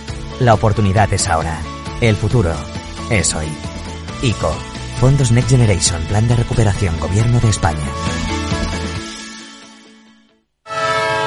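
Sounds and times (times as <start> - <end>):
speech: 0.4 - 8.4
horn blaring from a departing train: 10.6 - 11.2.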